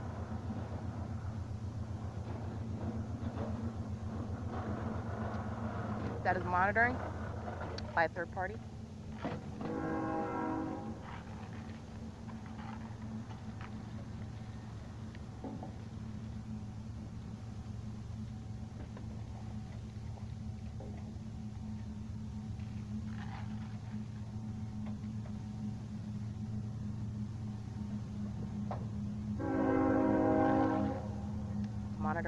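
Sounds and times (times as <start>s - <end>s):
train rumbling past: 0.0s - 32.2s
speech: 6.3s - 7.2s, 8.0s - 8.7s
train horn blast: 9.6s - 11.3s, 29.4s - 31.4s.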